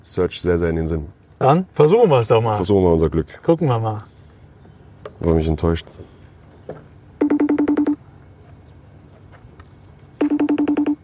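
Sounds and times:
speech: 0:00.0 - 0:04.2, 0:05.2 - 0:06.1
FaceTime video call ringing tone: 0:07.2 - 0:08.0, 0:10.2 - 0:11.0.

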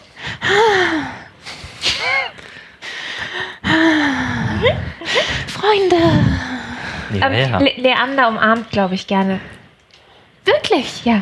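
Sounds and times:
loud heavy breathing: 0:00.0 - 0:07.6
speech: 0:05.7 - 0:06.2, 0:07.1 - 0:09.6, 0:10.7 - 0:11.2.

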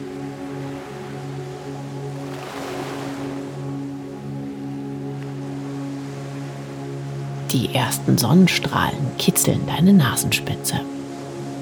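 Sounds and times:
soft steady ocean waves lapping: 0:00.0 - 0:06.8
speech: 0:07.5 - 0:11.0.

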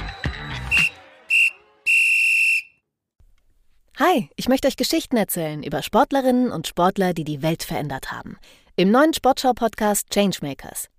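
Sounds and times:
loud shrill whistle blasts: 0:00.0 - 0:02.8
speech: 0:04.0 - 0:10.9.

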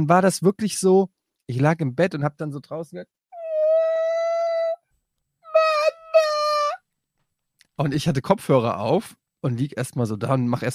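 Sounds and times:
speech: 0:00.0 - 0:03.2, 0:07.8 - 0:10.7
voice imitating a toddler's wailing cry: 0:03.4 - 0:04.8, 0:05.5 - 0:06.8.

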